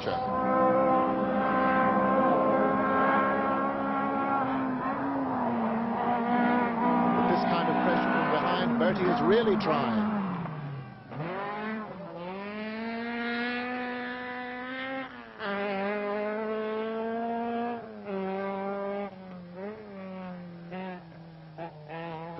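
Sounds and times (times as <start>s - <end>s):
speech: 0.0s - 0.6s, 8.9s - 10.1s
Alamak Manta rally car engine screaming hard on a rally stage: 0.0s - 22.3s.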